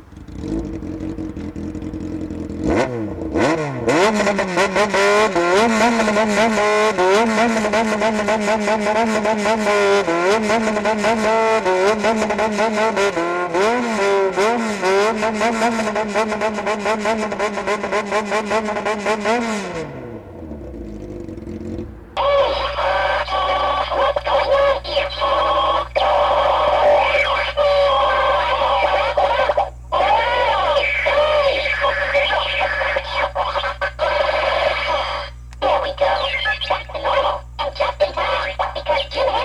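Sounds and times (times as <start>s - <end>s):
motorcycle engine revving in a rhythmic tune-like pattern: 0.0s - 39.4s.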